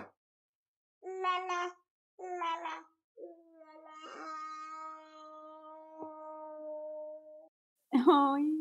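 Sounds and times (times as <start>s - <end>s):
toddler singing a song: 1.0s - 7.4s.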